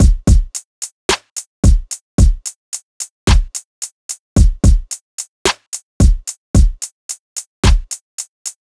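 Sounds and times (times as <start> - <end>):
full drum loop at 110 BPM: 0.0 - 0.6, 1.6 - 2.5, 3.3 - 3.6, 4.4 - 5.0, 6.0 - 6.9, 7.6 - 8.0.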